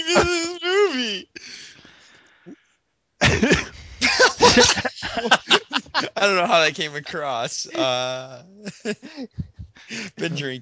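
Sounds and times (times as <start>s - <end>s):
harsh repeated coughing and throat-clearing: 0.0s - 0.6s, 3.2s - 6.3s, 9.0s - 10.6s
speech: 0.2s - 0.4s, 4.5s - 5.4s, 6.2s - 10.6s
laughter: 3.2s - 10.6s.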